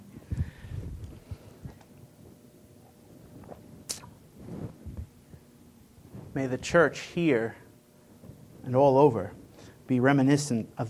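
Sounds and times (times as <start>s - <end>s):
person swallowing a sip of water: 2.9s - 4.2s
speech: 6.4s - 7.6s, 8.7s - 10.8s.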